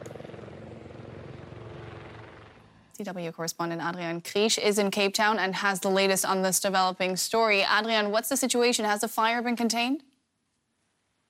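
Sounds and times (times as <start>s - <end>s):
firefighting helicopter rotor thumping over a wildfire on Table Mountain in Cape Town: 0.0s - 3.0s
speech: 3.0s - 10.1s.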